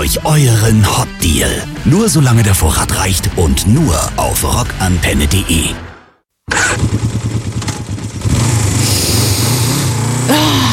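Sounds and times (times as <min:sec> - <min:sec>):
speech: 0:00.1 - 0:05.9
motorcycle engine starting, idling and revving: 0:06.5 - 0:10.7.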